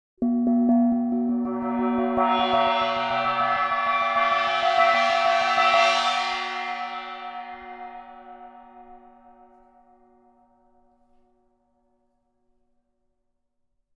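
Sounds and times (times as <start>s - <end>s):
large gong roll: 1.2s - 9.1s.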